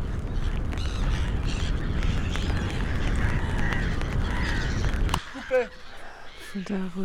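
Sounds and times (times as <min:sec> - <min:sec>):
seagull calling over the tide: 0:00.0 - 0:07.0
speech: 0:05.5 - 0:05.9, 0:06.5 - 0:07.0.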